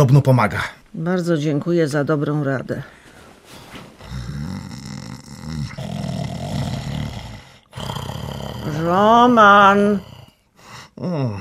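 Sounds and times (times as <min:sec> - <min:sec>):
speech: 0:00.0 - 0:03.6, 0:08.7 - 0:10.1, 0:11.0 - 0:11.3
man snoring while sleeping in bed: 0:04.0 - 0:11.3.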